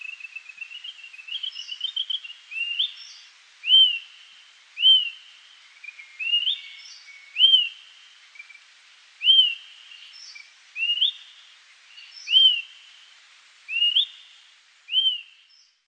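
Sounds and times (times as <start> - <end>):
light background hiss: 0.0 - 15.8
bird singing whistled rising slurred phrases: 0.6 - 4.1, 4.8 - 5.2, 5.9 - 7.8, 9.2 - 11.3, 12.0 - 12.7, 13.7 - 14.2, 14.9 - 15.6.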